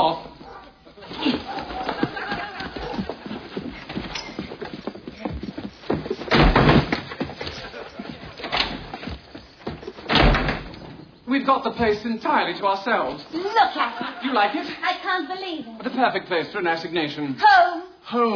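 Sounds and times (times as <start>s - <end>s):
laughter: 0.7s - 4.6s, 7.0s - 8.5s, 13.5s - 14.8s
door being forced open with heavy thuds and rattling bangs: 6.2s - 7.1s, 8.4s - 8.9s, 10.0s - 11.0s
speech: 11.5s - 18.3s.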